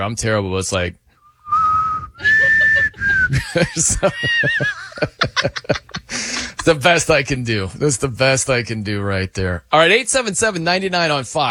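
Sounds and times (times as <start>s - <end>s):
speech: 0.0s - 1.0s, 3.3s - 6.0s, 6.6s - 11.4s
person whistling a short shaky off-key tune: 1.2s - 3.6s
person snickering laughter with breathy chuckles: 2.2s - 6.8s.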